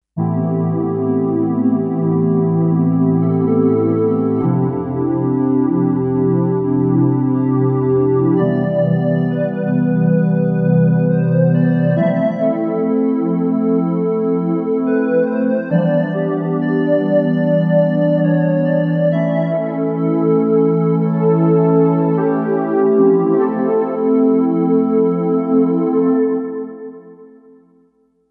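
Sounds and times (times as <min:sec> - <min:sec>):
Kawai K5000S synthesizer pad factory preset: 0:00.2 - 0:27.7.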